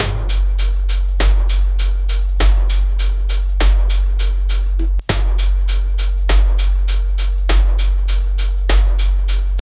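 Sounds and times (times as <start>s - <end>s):
beat machine kick drum: 0.0s - 9.6s.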